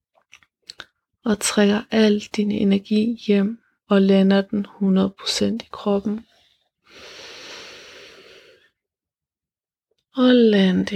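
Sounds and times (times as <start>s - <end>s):
speech: 1.2s - 6.3s, 10.2s - 10.9s
deep breath drawn in during a guided meditation: 6.8s - 8.8s.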